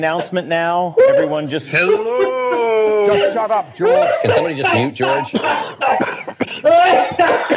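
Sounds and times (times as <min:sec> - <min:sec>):
speech: 0:00.0 - 0:02.4, 0:03.0 - 0:07.5
harsh raspy coughs: 0:01.8 - 0:07.5.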